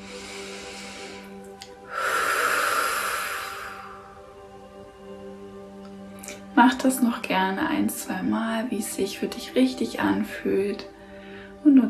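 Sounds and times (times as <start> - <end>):
deep breath in through the nose and out through a slightly open mouth: 0.0 - 4.5, 11.0 - 11.6
speech: 6.6 - 11.0.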